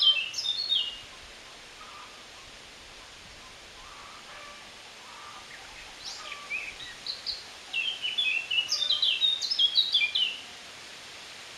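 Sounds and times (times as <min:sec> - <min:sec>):
Eurasian blackcap Sylvia atricapilla warbling song: 0:00.0 - 0:01.1, 0:05.5 - 0:10.4.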